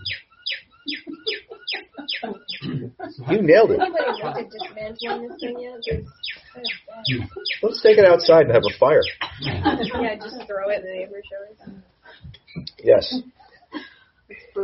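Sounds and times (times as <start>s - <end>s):
bird calling in repeated notes: 0.0s - 3.2s, 4.0s - 10.3s
people talking and laughing: 0.9s - 14.6s
speech: 3.3s - 11.8s, 12.5s - 13.3s.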